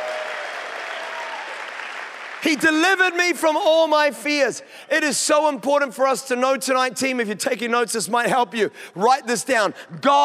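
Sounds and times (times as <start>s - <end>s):
audience applause: 0.0s - 3.1s
speech: 2.4s - 10.2s.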